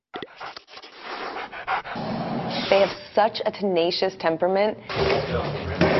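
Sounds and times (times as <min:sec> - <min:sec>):
bulldog panting heavily: 0:00.3 - 0:02.1
speech: 0:02.7 - 0:05.8.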